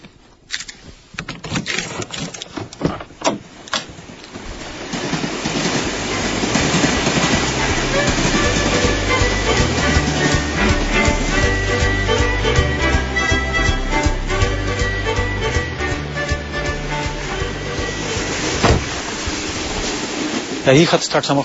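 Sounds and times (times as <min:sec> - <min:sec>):
train wheels clacking over rail joints: 0:01.3 - 0:21.4
train rolling on rails with a loud rumbling roar: 0:04.2 - 0:21.4
speech: 0:20.7 - 0:21.4.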